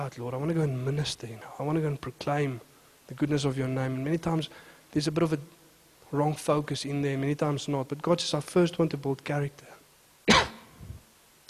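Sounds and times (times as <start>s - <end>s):
speech: 0.0s - 10.5s
short forced joking cough: 10.3s - 10.8s.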